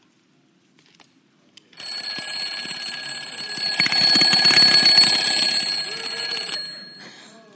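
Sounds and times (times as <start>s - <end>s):
alarm clock ringing: 1.8s - 7.3s.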